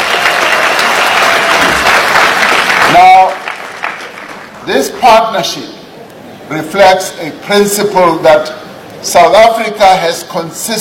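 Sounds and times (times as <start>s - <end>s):
audience applause: 0.0s - 4.6s
speech: 4.7s - 5.8s, 6.5s - 10.7s.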